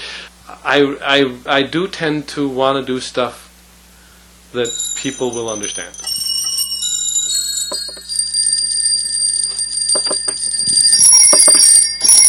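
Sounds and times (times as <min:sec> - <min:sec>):
speech: 0:00.5 - 0:03.4, 0:04.5 - 0:06.0
keyboard instrument with tuned copper chimes ringing: 0:04.6 - 0:12.2.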